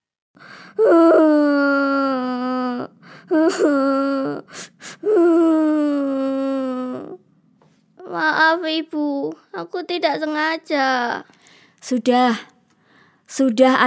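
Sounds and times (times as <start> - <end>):
child crying and sobbing: 0.7 - 7.2
speech: 3.3 - 4.5, 8.6 - 12.5, 13.3 - 13.8.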